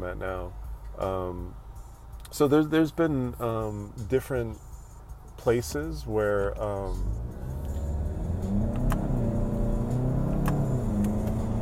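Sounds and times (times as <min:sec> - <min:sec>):
speech: 0:00.0 - 0:01.6, 0:02.3 - 0:04.7, 0:05.4 - 0:07.2
car engine accelerating: 0:06.7 - 0:11.5
sharp clicks and ticks: 0:08.5 - 0:09.2.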